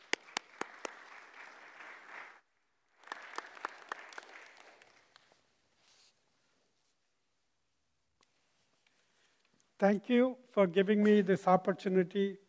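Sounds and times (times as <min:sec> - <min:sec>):
church audience clapping to welcome a speaker: 0:00.0 - 0:05.4
speech: 0:09.8 - 0:12.4.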